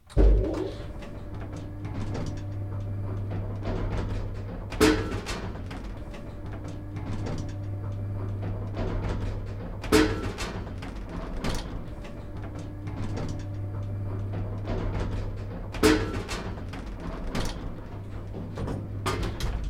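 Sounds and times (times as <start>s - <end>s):
old elevator: 0.0s - 19.6s.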